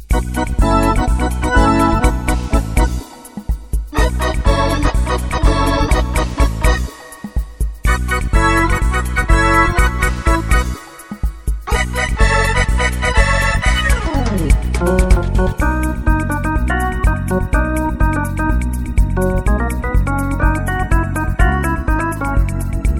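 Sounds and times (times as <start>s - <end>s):
Hammond organ: 0.1s - 22.9s.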